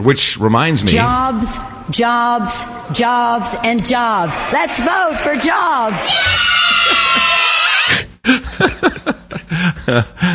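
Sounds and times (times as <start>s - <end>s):
speech: 0.0s - 10.3s
high-pitched shrieks and yells: 4.1s - 8.0s
children screaming together: 4.2s - 8.0s.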